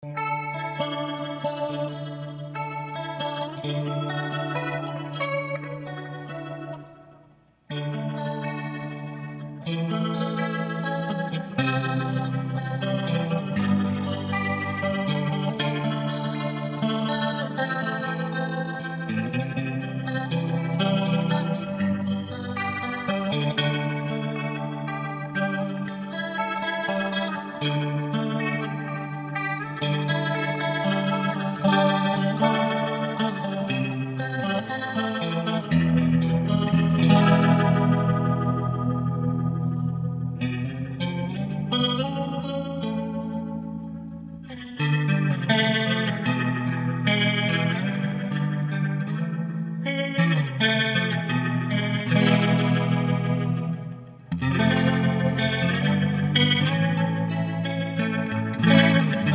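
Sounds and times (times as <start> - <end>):
electric guitar through rotary speaker effect pedal in fast speed: 0.0 - 59.3.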